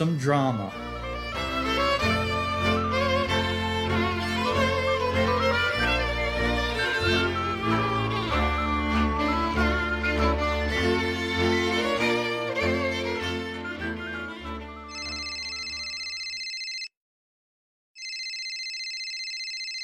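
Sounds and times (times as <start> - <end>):
speech: 0.0 - 1.5
music: 0.0 - 15.8
telephone ringing with a bright electronic trill: 14.9 - 16.9, 18.0 - 19.8.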